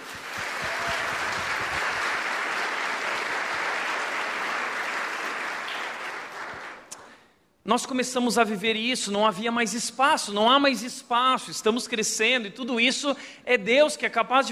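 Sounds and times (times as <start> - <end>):
crowd applauding: 0.0 - 7.2
speech: 7.7 - 14.5.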